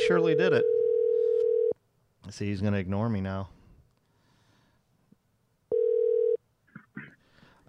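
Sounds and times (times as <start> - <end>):
speech: 0.1 - 0.8, 2.2 - 3.6
telephone dial tone: 0.6 - 1.8, 5.7 - 6.4.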